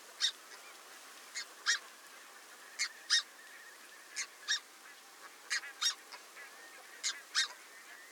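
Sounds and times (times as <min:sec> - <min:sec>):
faint hiss: 0:00.0 - 0:08.1
red-breasted goose squeaky calls: 0:01.4 - 0:01.8, 0:05.5 - 0:06.0, 0:07.0 - 0:07.6.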